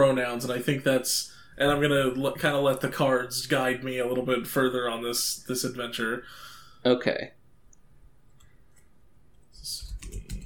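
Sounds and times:
speech: 0:00.0 - 0:07.4
notes typed on a computer keyboard: 0:09.6 - 0:10.4.

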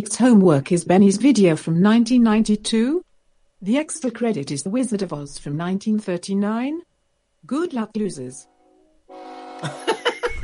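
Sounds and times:
speech: 0:00.0 - 0:03.0, 0:03.6 - 0:08.5, 0:09.1 - 0:09.9
train horn chord-like blast: 0:08.5 - 0:09.6
laughter: 0:09.6 - 0:10.4.

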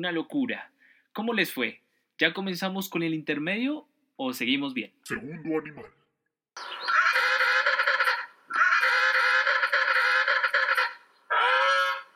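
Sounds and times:
speech: 0:00.0 - 0:06.0
penguin calling with harsh braying honks: 0:06.9 - 0:12.1.

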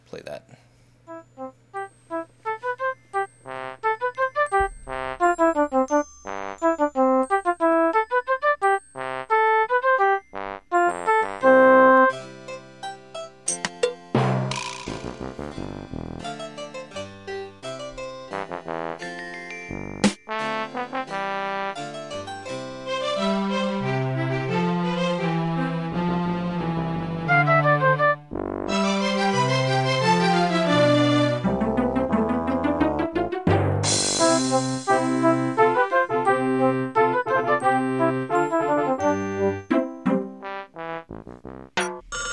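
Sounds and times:
speech: 0:00.1 - 0:00.7
plinking synth melody in video game town theme music: 0:01.1 - 0:42.3
buzzy sputtering blasts of a robot farting: 0:14.2 - 0:16.4, 0:28.3 - 0:28.7, 0:40.8 - 0:42.3.

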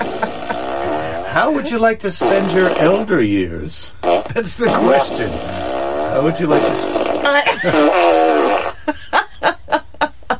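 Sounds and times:
short rhythmic bursts of laughter: 0:00.0 - 0:01.8, 0:07.3 - 0:10.3
long buzzy fart: 0:00.0 - 0:03.2, 0:04.0 - 0:08.9
speech: 0:01.3 - 0:09.1.

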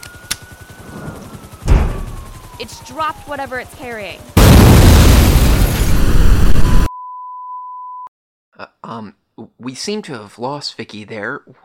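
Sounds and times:
speech: 0:02.6 - 0:04.4, 0:08.8 - 0:11.6
rumbling explosion: 0:04.4 - 0:06.9.

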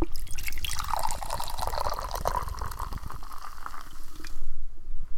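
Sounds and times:
cold tropical lime drink pouring from a freshly opened can into glasses: 0:00.0 - 0:04.4.

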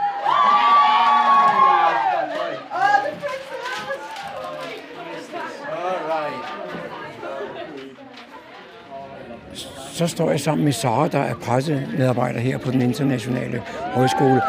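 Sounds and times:
large crowd of young people cheering: 0:00.0 - 0:07.2, 0:13.7 - 0:14.4
continuous hubbub of overlapping voices: 0:00.0 - 0:14.4
speech: 0:10.0 - 0:14.4.

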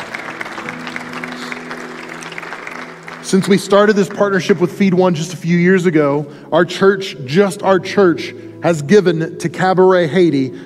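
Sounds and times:
audience applause: 0:00.0 - 0:04.8
speech: 0:03.3 - 0:10.6.

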